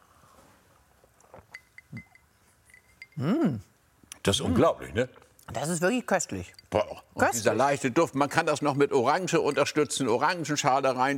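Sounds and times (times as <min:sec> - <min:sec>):
glasses clinking in a toast: 0:01.3 - 0:03.3, 0:06.3 - 0:11.0
speech: 0:03.2 - 0:11.1.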